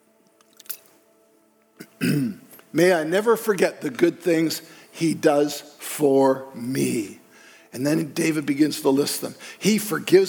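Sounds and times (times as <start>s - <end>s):
person sipping water: 0.3s - 1.0s
speech: 2.0s - 10.2s.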